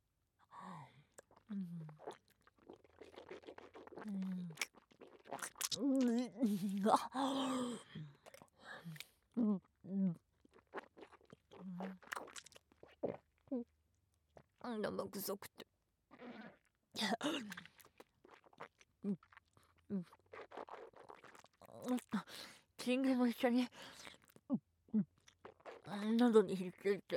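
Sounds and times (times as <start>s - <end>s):
wet chewing and smacking mouth sounds: 1.1s - 6.3s, 8.2s - 9.3s, 10.3s - 13.4s, 17.4s - 22.2s, 25.1s - 26.3s
speech: 6.4s - 8.0s, 15.2s - 15.5s, 22.9s - 24.0s, 26.0s - 27.1s.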